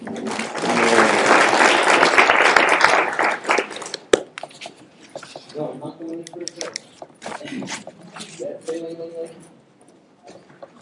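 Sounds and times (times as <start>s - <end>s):
crowd applauding: 0.1s - 4.3s
speech: 6.2s - 9.6s.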